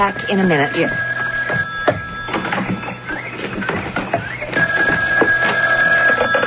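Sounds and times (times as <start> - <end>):
speech: 0.0 - 1.0
telephone ringing with a steady electronic tone: 0.0 - 6.4
clattering and shuffling noise: 1.3 - 6.4.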